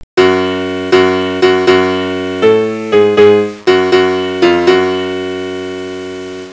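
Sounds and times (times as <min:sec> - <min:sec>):
horror piano: 0:00.1 - 0:06.5.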